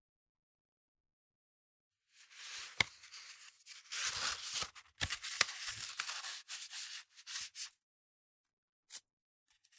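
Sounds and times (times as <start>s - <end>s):
crinkly paper rustling as a sheet is rolled up: 2.2s - 7.7s.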